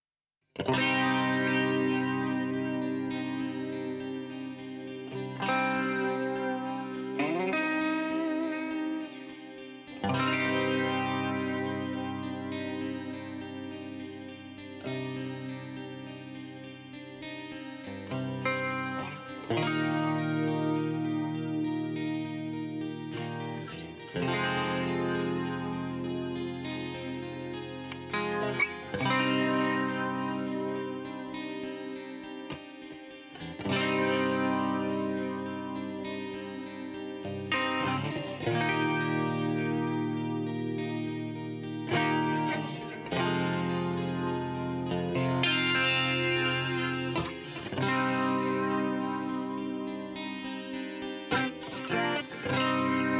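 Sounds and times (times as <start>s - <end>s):
guitar: 0.6s - 53.1s.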